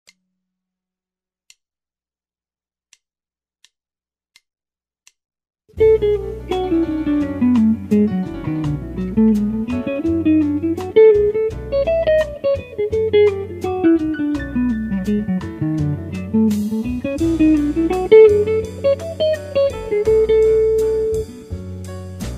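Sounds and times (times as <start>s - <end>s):
guitar lick: 5.8s - 21.6s.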